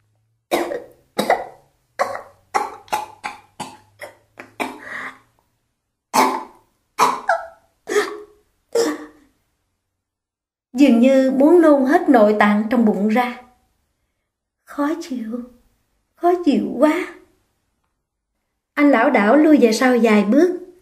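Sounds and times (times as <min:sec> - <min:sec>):
woman coughing dryly while clutching her throat: 0:00.5 - 0:05.0, 0:06.2 - 0:09.2
speech: 0:10.8 - 0:13.4, 0:14.8 - 0:15.6, 0:16.2 - 0:17.2, 0:18.8 - 0:20.6.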